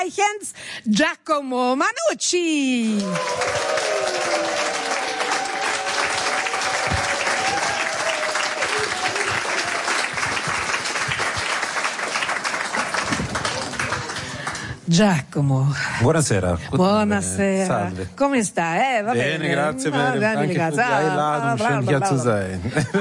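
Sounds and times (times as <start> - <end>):
speech: 0.0 - 4.0, 14.9 - 22.9
large audience applauding to welcome a guest: 2.9 - 14.8.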